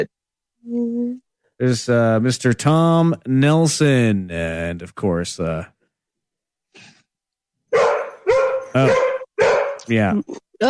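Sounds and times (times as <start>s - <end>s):
speech: 0.0s - 5.8s, 8.7s - 9.0s, 9.9s - 10.6s
dog barking loudly and excitedly with whiny yelps: 7.7s - 9.9s.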